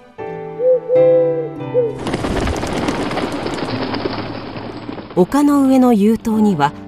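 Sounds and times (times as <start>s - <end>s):
pigeons cooing: 0.6s - 3.0s
speech: 1.7s - 2.4s, 5.2s - 6.8s
many pigeon wings flapping: 1.8s - 6.6s.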